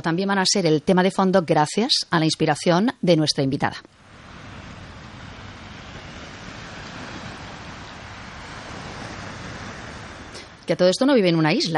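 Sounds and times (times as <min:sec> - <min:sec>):
speech: 0:00.0 - 0:04.0, 0:10.7 - 0:11.7
steady roar of sea surf: 0:03.9 - 0:11.7.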